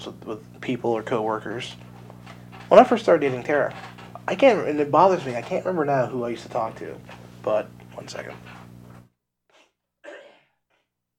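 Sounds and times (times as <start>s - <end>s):
speech: 0.0s - 1.9s, 2.7s - 8.6s
man coughing in short harsh bursts: 10.0s - 10.6s.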